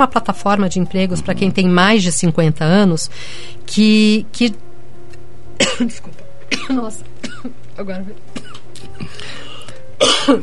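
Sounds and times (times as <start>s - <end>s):
speech: 0.0s - 4.6s, 5.6s - 9.4s
person with rhinitis coughing: 1.1s - 1.6s, 5.6s - 7.5s, 8.4s - 8.6s, 10.0s - 10.4s.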